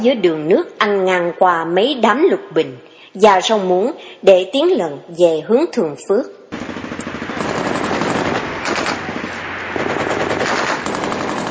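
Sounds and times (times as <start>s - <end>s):
speech: 0.0s - 6.4s
machine-gun fire near a canal: 6.5s - 11.4s.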